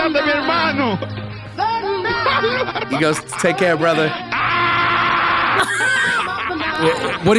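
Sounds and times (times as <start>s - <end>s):
laughter: 0.2s - 7.3s
speech: 3.0s - 4.5s, 6.8s - 7.3s
man screaming: 3.9s - 7.2s.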